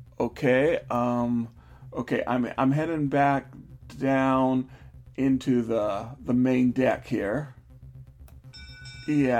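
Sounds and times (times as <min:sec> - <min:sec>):
speech: 0:00.2 - 0:07.6, 0:09.1 - 0:09.3
bell ringing with a high steady tone: 0:08.5 - 0:09.3.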